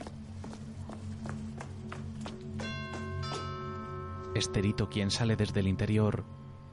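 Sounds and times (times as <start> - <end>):
footsteps climbing the steps of a luxurious house: 0.0 - 3.9
low droning hum: 0.0 - 6.7
bright ringing doorbell chime: 2.6 - 5.4
speech: 4.4 - 6.4.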